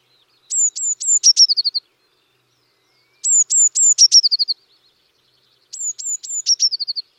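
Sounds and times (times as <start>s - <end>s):
Eurasian blue tit Cyanistes caeruleus calling: 0.5s - 1.8s, 3.0s - 4.6s, 5.7s - 7.1s.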